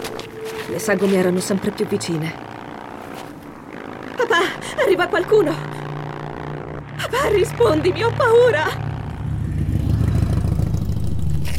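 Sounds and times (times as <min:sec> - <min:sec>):
rough low makeshift motorcycle engine rumbling: 0:00.0 - 0:11.5
speech: 0:00.7 - 0:02.5, 0:04.4 - 0:05.7, 0:07.1 - 0:08.8.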